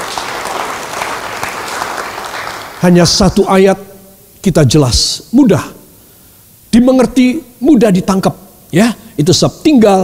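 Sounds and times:
crowd applauding: 0.0 - 2.8
speech: 2.8 - 5.8, 6.8 - 10.0.

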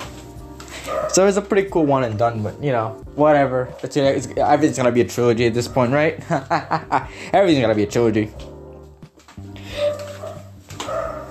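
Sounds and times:
dog barking: 0.8 - 1.3, 9.7 - 11.2
speech: 1.1 - 8.5.

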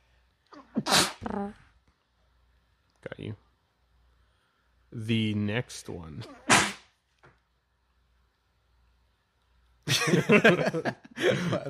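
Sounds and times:
person sneezing: 0.5 - 1.4, 6.2 - 6.9
speech: 1.4 - 1.6, 5.0 - 6.6, 10.0 - 11.6
laughter: 9.9 - 11.6.

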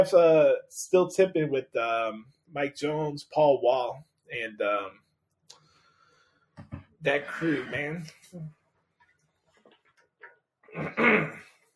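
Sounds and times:
speech: 0.0 - 5.0, 6.7 - 8.6, 10.8 - 11.5
person clearing throat loudly and harshly: 10.7 - 11.6.

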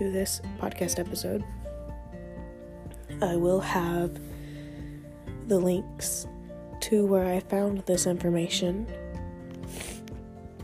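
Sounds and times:
speech: 0.0 - 1.7, 3.2 - 4.3, 5.5 - 9.0
breathy nasal sniffs: 9.6 - 10.2.

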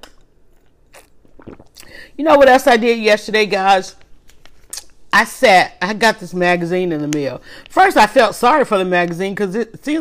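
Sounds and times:
wet sipping slurps of lemonade: 0.6 - 2.2
speech: 2.2 - 4.0, 5.2 - 10.0.

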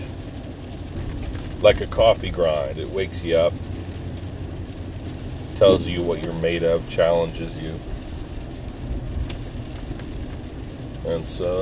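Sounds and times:
steady rain falling: 0.0 - 11.6
speech: 1.6 - 3.7, 5.6 - 7.9, 11.1 - 11.6.

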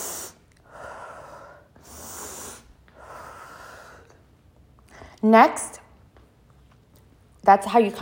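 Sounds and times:
slow deep breathing in and out: 0.0 - 5.2
speech: 5.2 - 5.8, 7.5 - 8.0.

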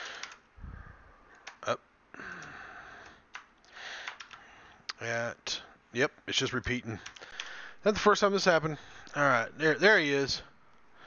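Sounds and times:
computer keyboard clicking: 0.0 - 0.4, 1.3 - 1.6, 2.4 - 4.4, 7.0 - 7.6
speech: 1.6 - 1.9, 5.0 - 7.2, 7.8 - 10.5.

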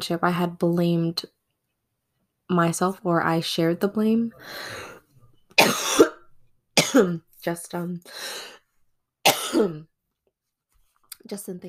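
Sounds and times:
speech: 0.0 - 1.4, 2.5 - 4.9, 5.6 - 6.1, 6.9 - 8.6, 9.5 - 9.9, 11.2 - 11.6
breathy exhale: 4.4 - 5.0
person coughing: 5.6 - 7.2, 9.3 - 9.8.

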